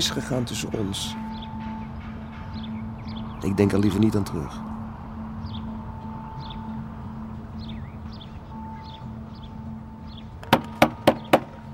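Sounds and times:
speech: 0.0s - 1.3s, 3.4s - 4.7s
banging on a door: 10.4s - 11.6s.

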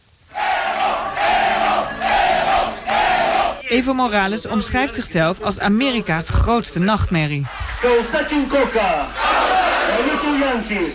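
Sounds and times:
large crowd cheering and chanting at a 2005 election victory: 0.3s - 3.7s, 7.5s - 10.9s
speech: 3.7s - 9.2s, 9.9s - 10.9s.

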